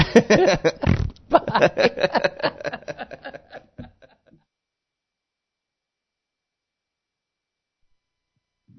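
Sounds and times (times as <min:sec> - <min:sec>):
speech: 0:00.2 - 0:02.3
voices talking and chuckling: 0:00.2 - 0:04.1
short low rumbling fart noise: 0:00.8 - 0:01.4.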